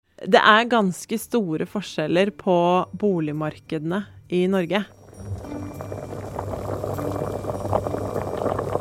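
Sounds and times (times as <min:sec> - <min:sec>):
speech: 0:00.2 - 0:05.0
low steady hum: 0:04.9 - 0:08.7
pot of spaghetti boiling vigorously: 0:04.9 - 0:08.7.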